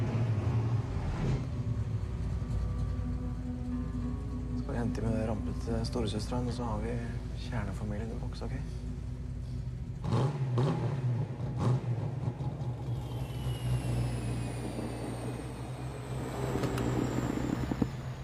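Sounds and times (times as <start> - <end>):
car engine revving: 0.0 - 8.4, 9.2 - 18.2
speech: 4.9 - 8.8.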